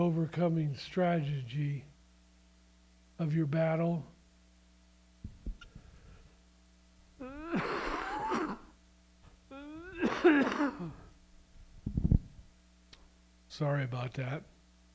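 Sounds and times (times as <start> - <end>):
speech: 0.0 - 1.9, 3.2 - 4.2, 10.2 - 11.0, 13.6 - 14.5
throat clearing grunt: 7.2 - 8.7, 9.6 - 11.1
harsh raspy coughing: 7.2 - 8.8, 9.6 - 11.1.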